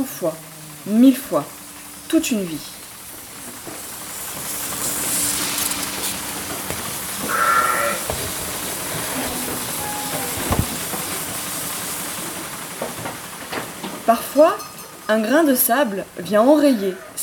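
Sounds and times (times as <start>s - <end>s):
speech: 0.0s - 2.8s, 14.1s - 17.2s
milking machinery hissing and humming in a sheep milking parlour: 0.0s - 17.2s
sheep bleating in a milking parlour: 7.2s - 11.0s.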